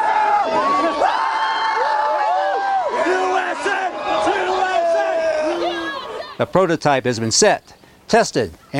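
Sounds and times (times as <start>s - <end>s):
dense crowd of college-age young people cheering and whooping on city streets: 0.0s - 6.4s
speech: 6.4s - 8.7s.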